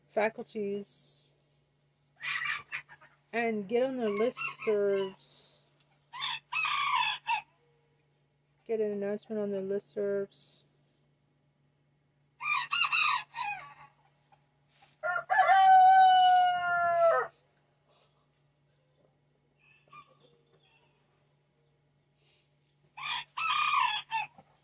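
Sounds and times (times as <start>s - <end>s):
speech: 0.2s - 1.3s, 3.3s - 5.4s, 8.7s - 10.6s
rooster crowing: 6.1s - 7.5s, 12.4s - 14.0s, 15.0s - 17.4s, 23.0s - 24.4s.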